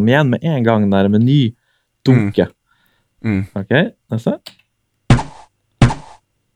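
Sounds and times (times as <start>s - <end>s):
speech: 0.0s - 2.6s, 3.2s - 4.6s
video game bow-and-arrow shot: 5.1s - 6.2s.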